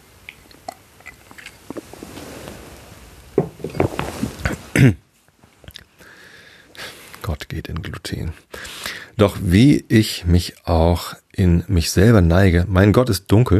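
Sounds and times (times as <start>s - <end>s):
quick sip of a drink with wet mouth and swallowing sounds: 0.3s - 2.8s
speech: 4.8s - 5.0s, 9.2s - 13.5s.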